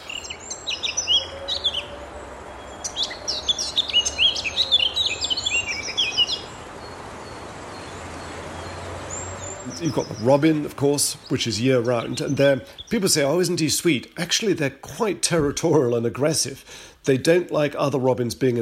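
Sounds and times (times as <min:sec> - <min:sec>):
male Eurasian blackcap warbling song from a perch: 0:00.0 - 0:14.6
steady background hiss: 0:00.0 - 0:18.6
speech: 0:09.8 - 0:18.6.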